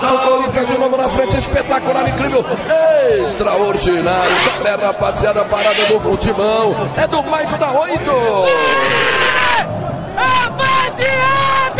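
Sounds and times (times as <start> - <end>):
speech: 0.6 - 10.4
stadium crowd roaring and shouting after a goal: 4.2 - 4.8, 8.4 - 11.7.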